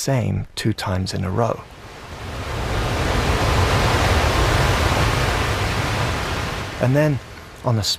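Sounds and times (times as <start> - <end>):
speech: 0.0 - 1.8, 6.8 - 7.9
storm waves pounding the shore: 1.6 - 7.9.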